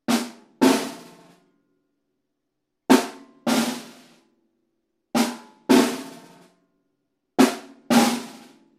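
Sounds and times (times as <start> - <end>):
two snare drums in jungle style: 0.1 - 1.3, 2.9 - 4.2, 5.2 - 6.4, 7.4 - 8.6.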